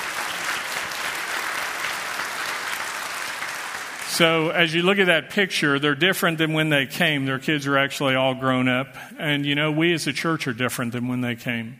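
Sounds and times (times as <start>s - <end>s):
large room full of people applauding: 0.0s - 4.6s
speech: 4.2s - 11.7s.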